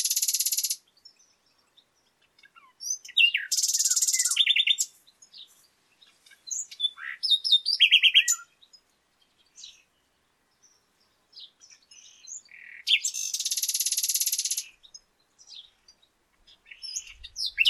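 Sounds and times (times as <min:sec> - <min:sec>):
common nightingale Luscinia megarhynchos singing: 0:00.0 - 0:17.6.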